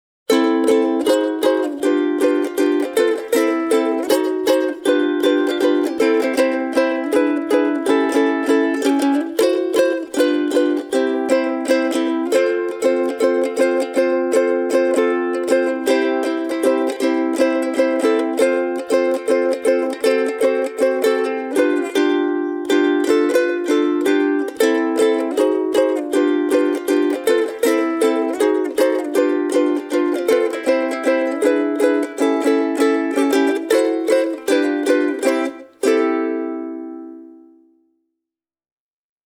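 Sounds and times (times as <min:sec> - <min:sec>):
instrument solo: 0:00.3 - 0:37.6.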